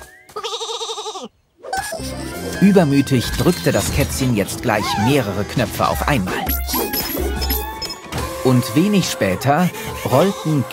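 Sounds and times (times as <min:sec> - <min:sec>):
sheep bleating as it is drawn into a shearing machine: 0:00.4 - 0:01.3
speech: 0:02.6 - 0:07.0, 0:08.4 - 0:10.7.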